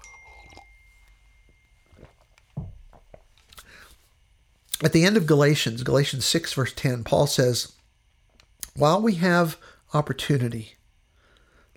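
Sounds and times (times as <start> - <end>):
person sipping hot coffee: 0.0 - 0.8
speech: 4.8 - 7.8, 8.8 - 10.8.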